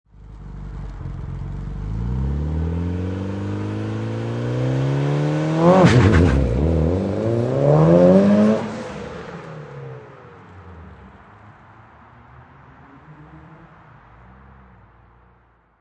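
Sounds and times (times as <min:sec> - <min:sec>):
Mitsubishi Evolution high performance car exhaust on takeoff: 0:00.1 - 0:09.2.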